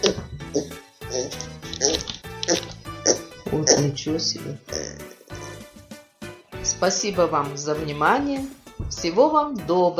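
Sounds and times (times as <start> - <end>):
child imitating pig oinks and grunts: 0.0 - 3.9
speech: 0.1 - 1.3, 4.0 - 4.7, 6.8 - 9.9.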